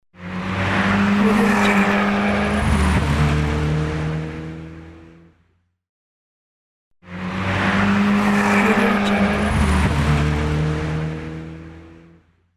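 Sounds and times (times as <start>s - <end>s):
turbo car passing by: 0.2s - 5.3s, 7.0s - 12.2s.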